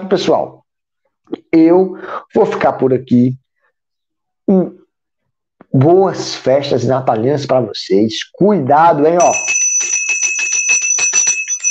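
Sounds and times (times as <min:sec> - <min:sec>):
speech: 0:00.1 - 0:00.6, 0:01.3 - 0:03.4, 0:04.5 - 0:04.8, 0:05.7 - 0:10.0
small bell ringing rapidly: 0:09.2 - 0:11.6.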